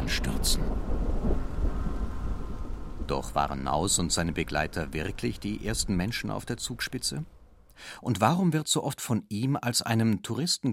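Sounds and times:
deep rumbling thunderclap near the summit of the Zugspitze: 0.0s - 7.8s
steady rainfall near the summit of the Zugspitze: 0.0s - 8.0s
speech: 0.1s - 1.4s, 3.1s - 10.7s.

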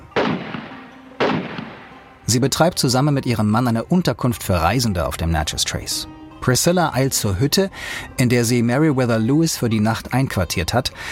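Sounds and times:
gunshots at a travelers' lodge on the Natchez Trace: 0.1s - 2.3s
speech: 2.3s - 11.1s.

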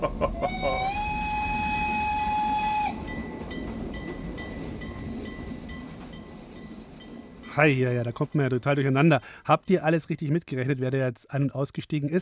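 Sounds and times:
speech: 0.0s - 0.6s, 7.6s - 12.1s
laughter: 0.0s - 0.9s
train rolling along the tracks with a rumbling clatter: 0.0s - 10.5s
train whistle: 0.4s - 3.5s.

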